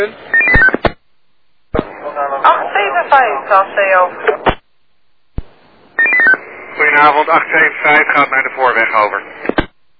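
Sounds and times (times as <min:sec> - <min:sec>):
speech: 0:00.0 - 0:00.3, 0:03.0 - 0:04.5, 0:07.0 - 0:09.6
touch-tone keypad beeps of a telephone number being dialled: 0:00.3 - 0:00.8, 0:06.0 - 0:06.4.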